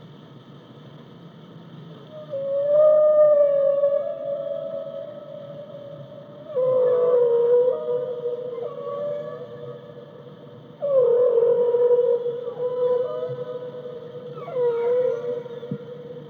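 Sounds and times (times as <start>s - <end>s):
steady background noise: 0.0s - 16.2s
whale calls: 2.2s - 16.2s.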